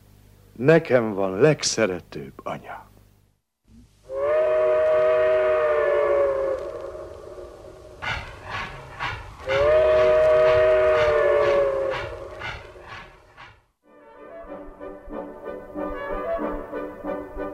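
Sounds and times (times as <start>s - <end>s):
speech: 0.6s - 2.9s
train whistle blasts: 4.0s - 17.2s
train rumbling and chuffing: 7.4s - 13.7s.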